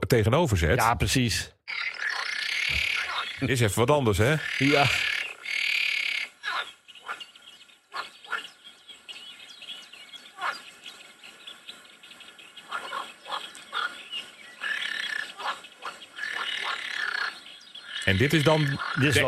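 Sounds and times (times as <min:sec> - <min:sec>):
speech: 0:00.1 - 0:01.8, 0:03.4 - 0:05.1, 0:18.1 - 0:19.2
green frogs calling with external vocal sacs: 0:01.6 - 0:19.2.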